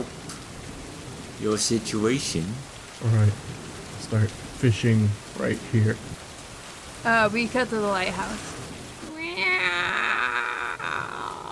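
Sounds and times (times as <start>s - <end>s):
speech: 1.4s - 6.2s, 7.0s - 8.5s
cat yowling: 9.1s - 11.5s.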